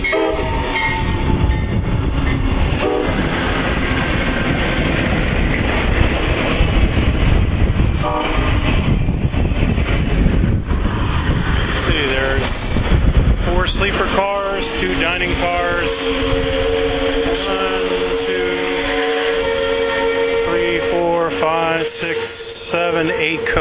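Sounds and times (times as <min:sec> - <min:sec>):
train horn blaring: 0:00.0 - 0:01.8, 0:02.8 - 0:03.3, 0:08.0 - 0:08.7, 0:13.7 - 0:23.6
passenger train passing: 0:00.0 - 0:23.6.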